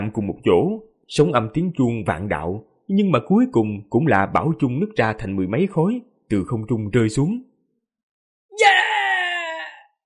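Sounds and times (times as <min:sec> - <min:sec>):
speech: 0:00.0 - 0:07.5
miserable scream of pain in a fantasy battle scene: 0:08.5 - 0:10.0.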